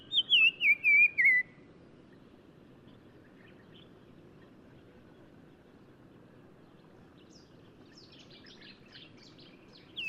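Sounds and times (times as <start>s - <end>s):
black-crowned tchagra whistling descending notes in Morocco: 0.1s - 1.6s.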